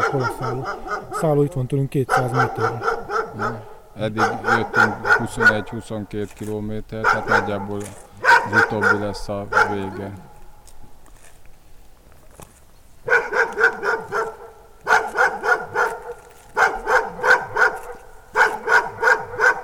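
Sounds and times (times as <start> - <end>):
dog barking: 0.0 - 1.4, 2.0 - 5.8, 7.0 - 10.4, 13.0 - 19.6
speech: 0.1 - 10.3.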